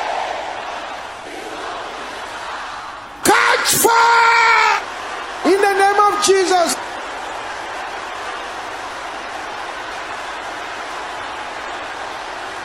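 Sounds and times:
large crowd shouting a prayer: 0.0s - 12.6s
person yelling: 3.2s - 4.8s, 5.5s - 6.8s
speech: 3.6s - 4.2s.

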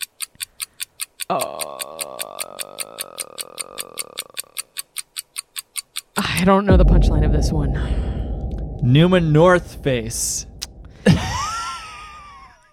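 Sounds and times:
game show countdown clock ticking: 0.0s - 8.8s
speech: 1.3s - 1.6s, 6.4s - 8.0s, 8.8s - 10.5s.

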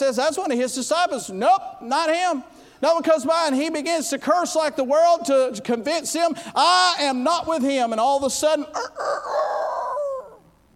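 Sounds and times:
speech: 0.0s - 9.7s
rooster crowing in a city: 8.8s - 10.4s.

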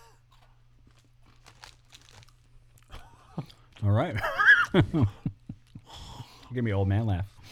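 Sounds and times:
crunching into a Kit Kat drumstick bar: 0.3s - 4.0s
speech: 3.4s - 5.2s, 6.5s - 7.5s.

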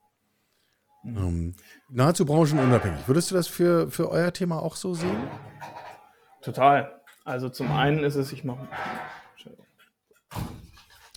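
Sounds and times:
speech: 1.0s - 5.8s, 6.4s - 9.6s, 10.3s - 10.5s
heavy construction site banging through open window: 2.1s - 6.1s, 7.6s - 9.4s.

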